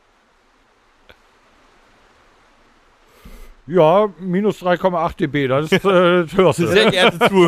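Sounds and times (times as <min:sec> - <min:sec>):
rain pattering on a roof: 0:00.0 - 0:07.4
speech: 0:03.7 - 0:07.4
laughter: 0:05.6 - 0:07.4.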